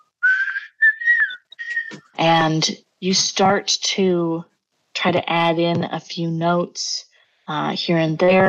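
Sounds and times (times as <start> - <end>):
soft airy whistled melody with wavering tones: 0.0 - 2.0
speech: 2.2 - 8.4.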